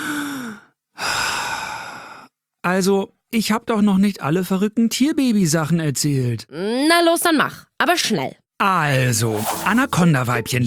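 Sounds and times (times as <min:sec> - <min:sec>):
person breathing in and out: 0:00.0 - 0:02.4
speech: 0:02.7 - 0:10.6.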